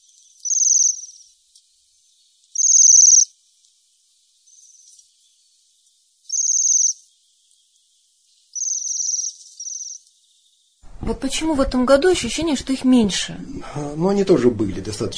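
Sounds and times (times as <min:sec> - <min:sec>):
Bohemian waxwing trilling calls: 0:00.4 - 0:01.3, 0:02.5 - 0:03.3, 0:06.3 - 0:07.1, 0:08.5 - 0:10.1
speech: 0:11.1 - 0:15.1.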